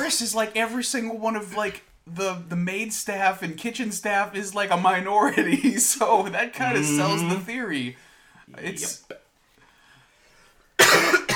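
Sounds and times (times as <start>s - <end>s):
speech: 0.1s - 9.2s
person coughing hard: 10.8s - 11.3s.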